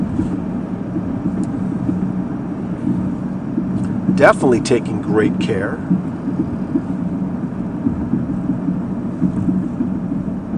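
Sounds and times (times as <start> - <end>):
car idling while stopped in road traffic: 0.0 - 10.5
speech: 4.2 - 6.1.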